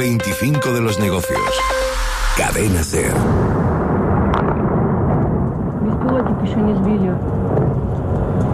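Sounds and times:
speech: 0:00.1 - 0:03.6, 0:06.5 - 0:07.8
missile strikes and explosions rumbling: 0:01.9 - 0:08.5.

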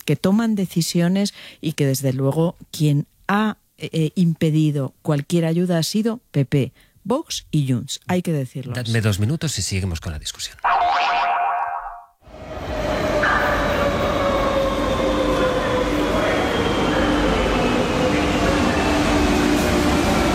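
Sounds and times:
speech: 0:00.1 - 0:11.2
subway train running at speed with loud steady rumble: 0:12.2 - 0:20.3.

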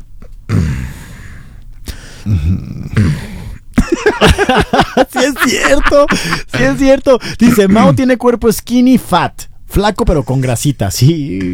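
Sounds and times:
voice imitating heavy raspy breathing: 0:00.5 - 0:03.8
speech: 0:02.3 - 0:03.3, 0:04.2 - 0:11.5
laugh-like voiced sounds: 0:02.3 - 0:08.0.

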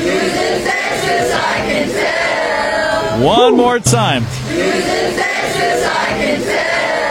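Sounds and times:
large crowd singing along at a live event: 0:00.0 - 0:07.0
person calling out: 0:03.2 - 0:04.3
speech: 0:03.2 - 0:05.7.

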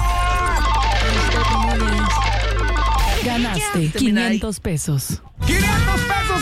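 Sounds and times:
telephone ringing for an incoming call: 0:00.0 - 0:04.5
speech: 0:03.3 - 0:05.8.

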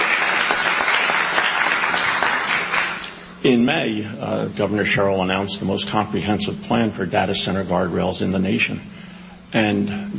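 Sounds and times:
audience applause at a political speech: 0:00.0 - 0:03.1
speech: 0:03.4 - 0:10.1.

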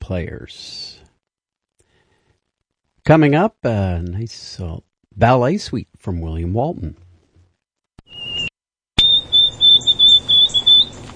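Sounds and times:
speech: 0:00.1 - 0:00.9, 0:03.1 - 0:07.0
white-throated sparrow whistled song: 0:08.0 - 0:11.1.

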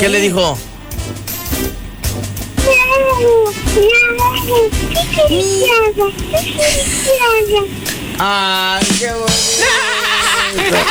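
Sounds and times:
speech: 0:00.0 - 0:01.2, 0:03.2 - 0:10.8
child imitating a cat's meow while telling a joke: 0:02.6 - 0:07.8
laughter: 0:09.2 - 0:10.8.

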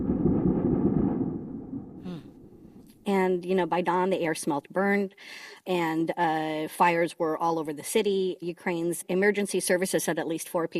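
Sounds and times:
airstrike explosion boom in Kyiv Ukraine: 0:00.0 - 0:02.9
speech: 0:03.1 - 0:10.7.

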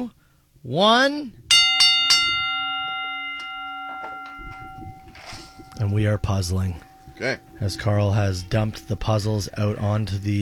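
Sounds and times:
speech: 0:00.0 - 0:01.4, 0:05.8 - 0:10.3
bell struck to start a timer: 0:01.5 - 0:09.6.

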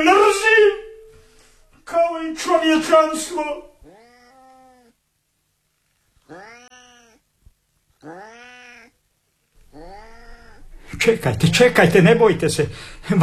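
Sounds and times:
speech: 0:02.2 - 0:03.7, 0:08.0 - 0:08.4, 0:11.0 - 0:13.2
tomcat yowling meows: 0:03.8 - 0:05.0, 0:06.2 - 0:07.2, 0:08.0 - 0:09.0, 0:09.6 - 0:10.7.

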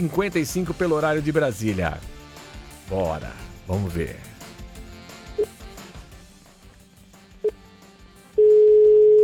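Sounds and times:
speech: 0:00.0 - 0:02.2, 0:02.9 - 0:04.3
telephone ringing tone as a call is placed: 0:08.4 - 0:09.2.

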